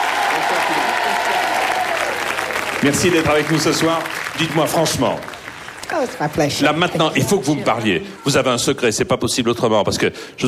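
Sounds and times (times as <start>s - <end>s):
audience applause in a TV studio: 0.0s - 8.0s
speech: 2.8s - 5.3s, 5.9s - 10.4s.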